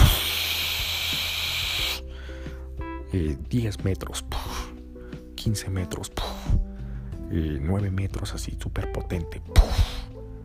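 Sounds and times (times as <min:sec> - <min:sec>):
voice imitating a powerful hose spray with a hissing rush: 0:00.0 - 0:02.0
speech: 0:03.1 - 0:04.4, 0:05.4 - 0:06.6, 0:07.3 - 0:10.0.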